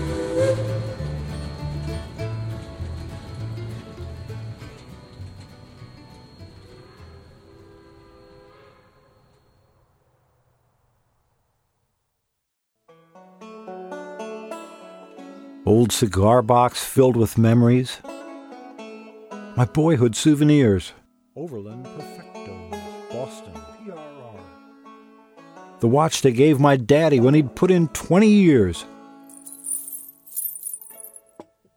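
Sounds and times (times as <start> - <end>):
freight train whistle: 0.0 - 1.7, 6.6 - 9.4
speech: 15.7 - 18.1, 19.6 - 22.1, 25.8 - 28.9.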